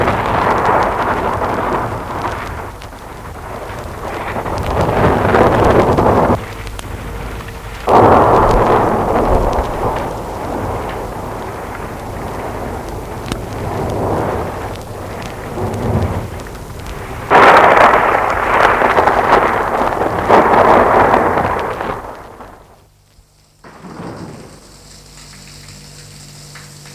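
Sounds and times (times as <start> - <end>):
steady roar of wind: 0.0 - 22.9
deep rolling thunder: 0.0 - 23.0, 23.6 - 24.8
rain: 0.0 - 26.9.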